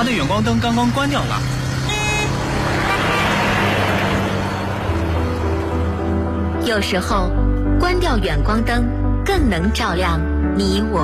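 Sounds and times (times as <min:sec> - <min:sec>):
speech: 0:00.0 - 0:01.6, 0:06.6 - 0:11.0
car approaching on a road: 0:00.0 - 0:06.6.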